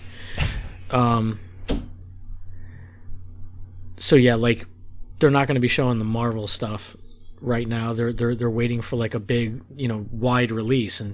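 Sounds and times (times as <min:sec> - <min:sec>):
quiet room hum: 0:00.0 - 0:11.1
door shutting with a solid thud: 0:00.2 - 0:02.0
speech: 0:00.9 - 0:01.5, 0:04.1 - 0:11.1.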